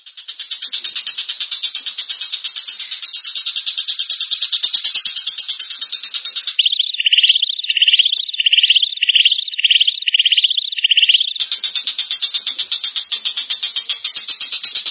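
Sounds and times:
long-tailed shrike repeated upslurred whistled notes: 0.4 - 14.8
long-tailed shrike fast buzzy trill: 5.6 - 14.8.

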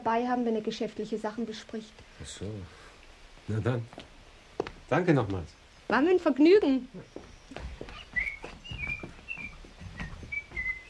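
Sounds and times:
speech: 0.0 - 2.8, 3.5 - 7.7
girl whistling while strolling along an overgrown path: 7.9 - 10.8.

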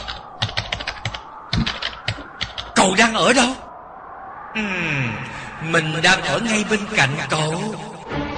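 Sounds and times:
quick typing on a computer keyboard: 0.0 - 2.7
speech: 2.8 - 3.6, 4.6 - 8.2.

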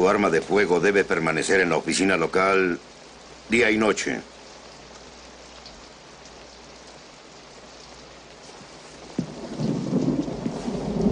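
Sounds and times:
speech: 0.0 - 4.4
rain falling steadily: 0.0 - 11.1
dull low thump: 9.1 - 11.1.

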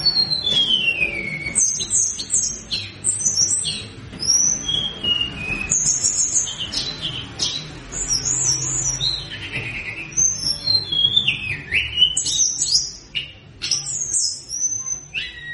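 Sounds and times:
mountain flowerpecker song of thin high whistles and chittering trills played as a lure: 0.0 - 15.5.

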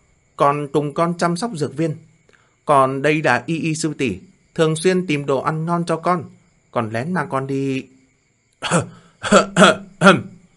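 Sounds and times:
speech: 0.4 - 2.1, 2.7 - 7.9, 8.6 - 10.3
person giving short dry coughs: 8.6 - 10.3.

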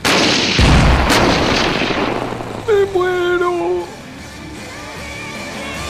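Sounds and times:
artillery fire from an army unit shooting reconnaissance rounds: 0.0 - 4.1
sharp crack of artillery fire: 0.0 - 4.2
sustained low rumble: 0.6 - 4.4.

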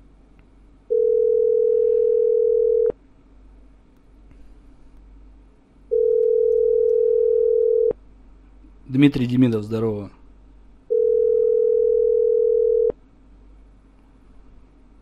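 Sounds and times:
telephone ringback tones after dialing a call: 0.9 - 2.9, 5.9 - 7.9, 10.9 - 12.9
speech: 8.9 - 10.2.

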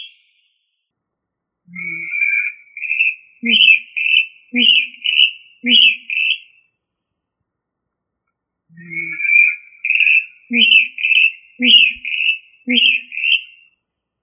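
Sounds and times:
rail (Rallidae) calling in two-part phrases: 1.7 - 6.4, 8.7 - 13.6.

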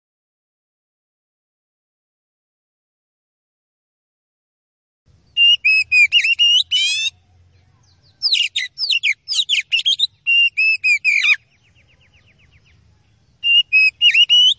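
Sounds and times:
Oriental magpie-robin singing loud bursts of whistles, buzzy notes and trills: 5.1 - 14.5.

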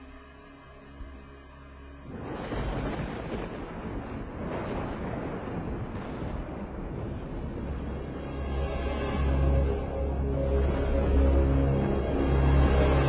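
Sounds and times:
loud sky-splitting thunder rumbling: 2.0 - 13.0.

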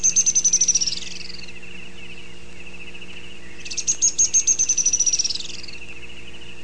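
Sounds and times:
faint background hum: 0.0 - 6.6
grey-headed spinetail Cranioleuca semicinerea song of high rapid trills: 0.0 - 6.6.

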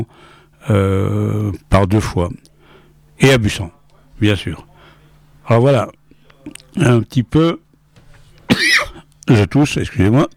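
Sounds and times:
speech: 0.0 - 2.5, 3.2 - 4.7, 5.5 - 7.6, 8.5 - 10.3
single harsh cough during a theatre performance: 8.5 - 9.1.

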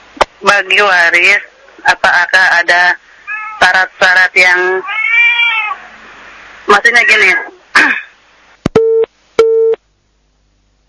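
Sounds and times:
speech: 0.4 - 5.0, 6.7 - 8.0
telephone busy signal after a disconnected call: 8.8 - 9.8.

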